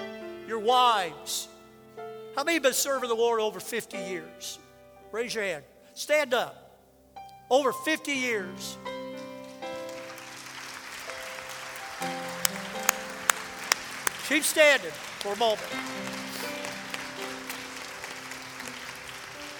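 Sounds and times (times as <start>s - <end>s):
speech: 0.5s - 1.5s, 2.4s - 6.6s, 7.5s - 8.9s, 14.3s - 16.2s
congregation applauding: 9.5s - 19.5s.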